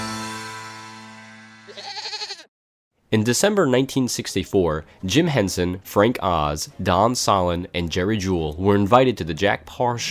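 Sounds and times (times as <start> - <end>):
goat bleating: 1.7 - 2.5
speech: 3.1 - 10.0.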